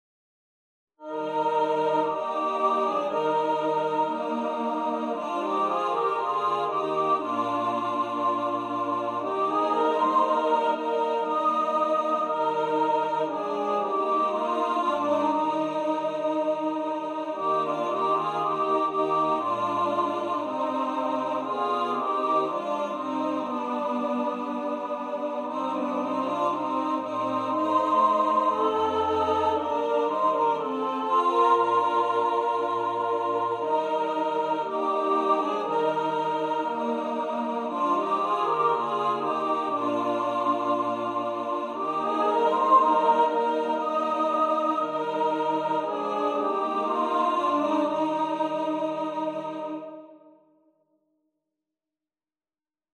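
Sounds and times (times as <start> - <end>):
soprano singing: 1.0 - 50.1.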